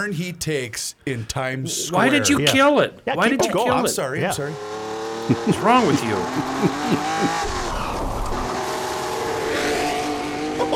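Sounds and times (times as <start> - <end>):
speech: 0.0 - 7.6
laughter: 1.7 - 4.4, 5.2 - 8.2, 10.6 - 10.7
racing car engines roaring and revving: 3.5 - 10.7
racing car tire squeal: 6.4 - 10.7.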